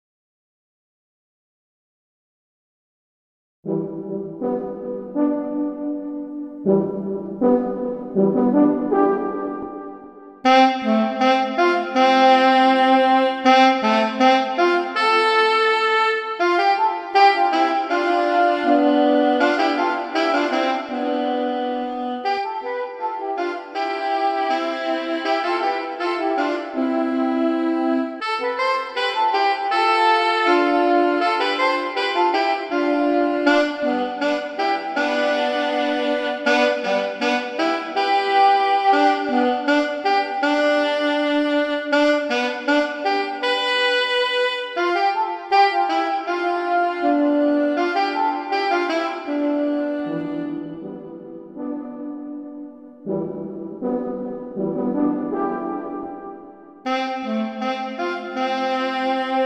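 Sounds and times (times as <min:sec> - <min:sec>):
saxophone mantra: 0:03.7 - 0:59.4.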